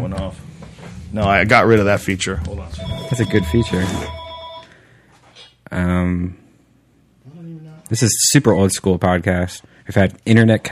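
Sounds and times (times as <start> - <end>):
speech: 0.1 - 0.5, 1.1 - 4.2, 5.7 - 6.4, 7.9 - 10.6
steady electronic tones: 2.2 - 4.8
telephone ringing: 2.8 - 4.8.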